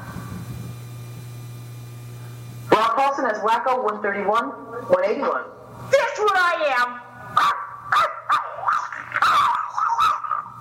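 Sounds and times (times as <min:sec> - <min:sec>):
speech: 0:03.0 - 0:05.6, 0:06.2 - 0:07.0
voice imitating a dog barking: 0:07.3 - 0:10.5.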